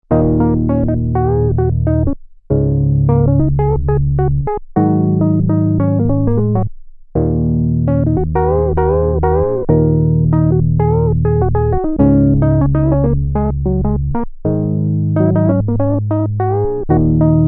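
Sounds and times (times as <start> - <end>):
sequential note bends: 0.1 - 17.4.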